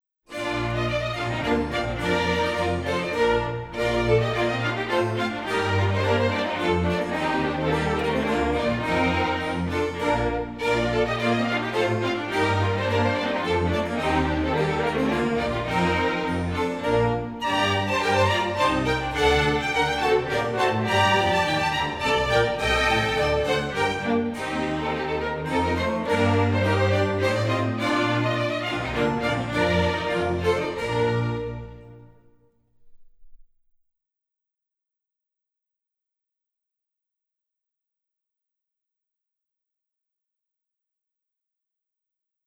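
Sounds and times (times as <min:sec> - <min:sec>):
continuous hornpipe tune: 0:00.3 - 0:32.3.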